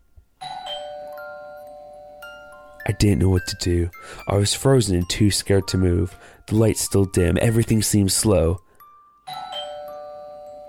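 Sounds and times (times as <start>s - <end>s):
doorbell ringing with a two-tone chime in a living room: 0.4s - 5.9s, 8.8s - 10.6s
speech: 2.9s - 8.7s.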